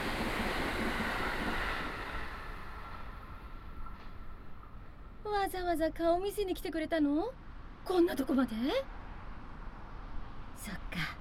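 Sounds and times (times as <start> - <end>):
limited express train passing: 0.0 - 10.5
speech: 5.4 - 9.0, 10.6 - 11.1.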